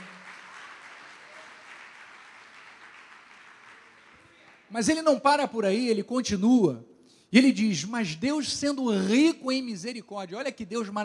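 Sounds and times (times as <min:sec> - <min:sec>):
church audience clapping: 0:00.0 - 0:04.7
speech: 0:04.7 - 0:11.0.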